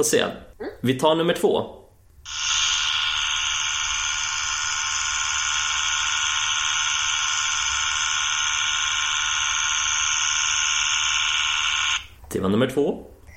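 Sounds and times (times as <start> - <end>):
speech: 0.0 - 2.5, 12.4 - 13.1
electric toothbrush buzzing: 2.3 - 12.1.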